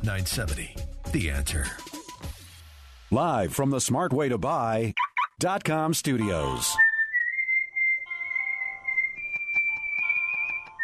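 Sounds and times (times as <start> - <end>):
speech: 0.0 - 2.0, 3.1 - 6.9
woman whistling a slow sustained melody: 6.8 - 10.8.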